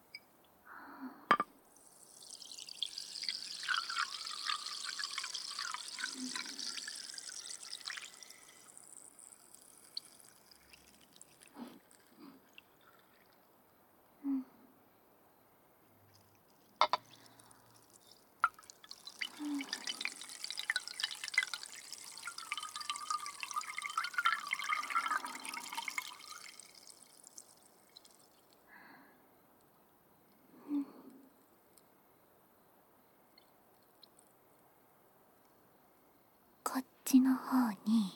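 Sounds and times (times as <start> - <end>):
scattered drips and light clinks: 1.3 - 13.6, 16.0 - 28.7
dense crackling fizz of carbonated drink bubbles: 1.7 - 13.6, 16.2 - 28.6
steady pour of carbonated drink: 1.8 - 13.6, 16.2 - 28.6
speech: 36.8 - 38.1.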